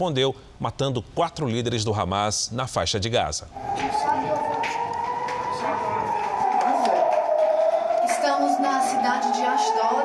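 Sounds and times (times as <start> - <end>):
speech: 0.0 - 4.8
low noise: 0.0 - 10.0
air raid siren wailing in a steady sustained tone: 3.5 - 10.0.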